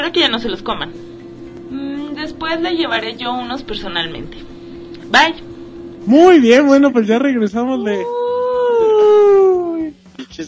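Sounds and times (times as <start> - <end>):
speech: 0.0 - 4.5, 5.1 - 8.2
long wavering howl: 7.8 - 9.9.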